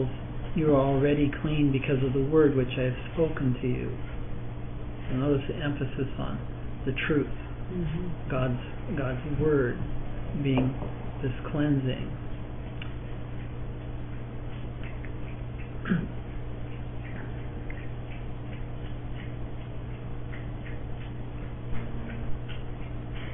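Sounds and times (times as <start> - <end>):
speech: 0.0 - 4.2, 5.1 - 12.2
low hum: 0.0 - 23.3
puppy lapping water: 12.8 - 23.3.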